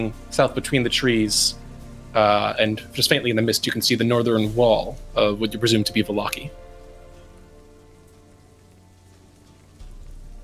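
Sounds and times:
speech: 0.0 - 6.6
steady rain pattering on a hard surface: 6.7 - 10.4.

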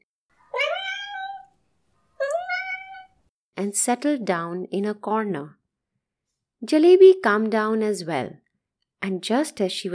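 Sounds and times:
cat meowing: 0.5 - 1.6, 2.2 - 3.2
speech: 3.6 - 5.6, 6.6 - 8.4, 9.0 - 9.9.

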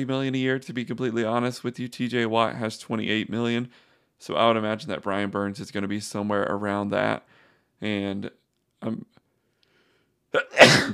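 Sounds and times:
speech: 0.0 - 9.2, 10.3 - 10.9
sneeze: 10.4 - 10.9.

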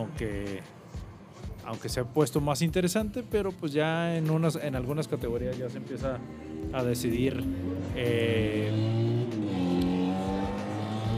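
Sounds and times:
speech: 0.0 - 0.8, 1.6 - 9.0
motorcycles roaring past outside: 5.8 - 11.1.

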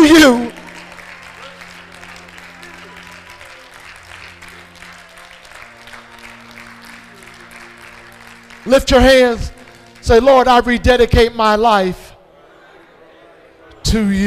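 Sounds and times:
large audience clapping at a worship service: 0.0 - 10.8
speech: 0.2 - 0.5, 8.7 - 12.0, 13.9 - 14.2.

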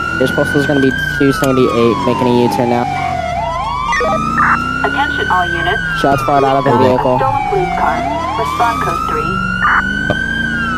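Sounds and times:
engine-like noise: 0.0 - 10.7
police car siren wailing in a video game: 0.0 - 10.7
speech: 0.2 - 3.0, 4.0 - 10.2.

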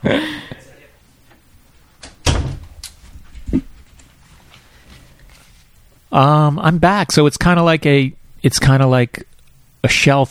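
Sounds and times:
speech: 0.0 - 0.6, 6.2 - 10.2
door creaking: 2.0 - 2.8.

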